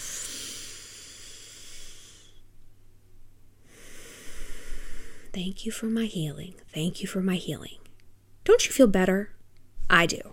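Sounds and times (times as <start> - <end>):
deep breath in: 0.0 - 2.5, 3.6 - 5.4
speech: 5.4 - 7.8, 8.5 - 10.3.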